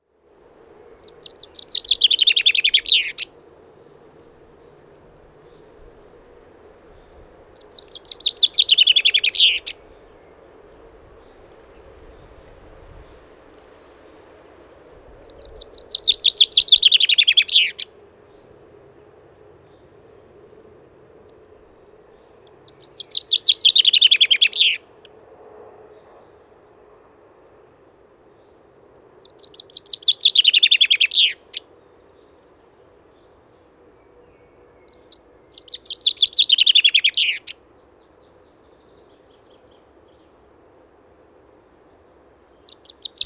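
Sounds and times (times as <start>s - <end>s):
common chaffinch calling: 1.0s - 3.3s, 7.6s - 9.9s, 15.2s - 17.9s, 22.4s - 24.9s, 29.2s - 31.6s, 34.8s - 37.6s, 42.6s - 43.2s.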